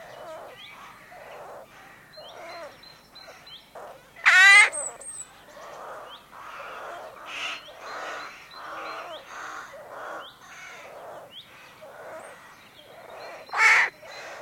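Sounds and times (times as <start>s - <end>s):
rook cawing: 0.0s - 5.0s, 5.6s - 14.4s
croaking calls from many rooks in a rookery: 0.0s - 14.4s.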